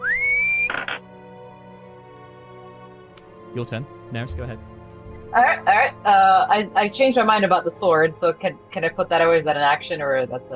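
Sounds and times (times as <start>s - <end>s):
person whistling: 0.0s - 0.8s
speech: 3.6s - 10.5s.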